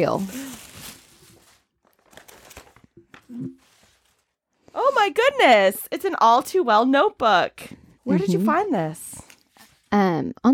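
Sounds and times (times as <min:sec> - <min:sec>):
speech: 0:00.0 - 0:00.4, 0:04.8 - 0:09.1, 0:09.9 - 0:10.5
tissue paper crinkling as a present is unwrapped: 0:00.0 - 0:04.4, 0:08.2 - 0:09.9.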